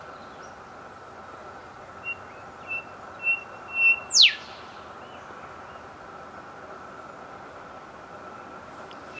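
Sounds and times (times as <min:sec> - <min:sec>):
golden whistler Pachycephala pectoralis song in the Meehan Range: 0:02.0 - 0:04.6.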